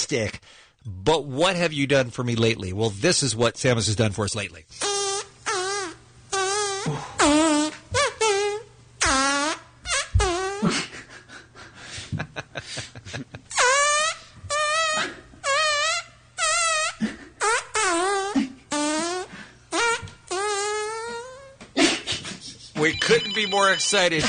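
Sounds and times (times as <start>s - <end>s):
speech: 0.0s - 5.3s, 23.5s - 24.2s
musical fart performance: 4.8s - 10.9s, 13.5s - 22.0s.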